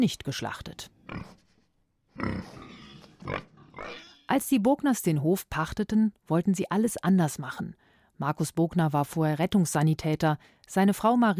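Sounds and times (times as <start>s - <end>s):
speech: 0.0s - 1.4s, 2.2s - 2.6s, 3.2s - 11.3s
large boar grunting and snuffling as it shuffles past on a farm: 1.1s - 1.5s, 2.2s - 4.2s.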